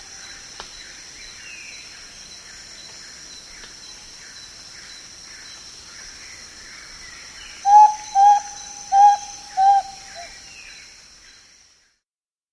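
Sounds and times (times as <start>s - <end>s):
background birds: 0.0s - 12.0s
steady high insect hiss: 0.0s - 12.0s
spotted antpitta singing pure level whistled notes in South America: 7.6s - 10.4s.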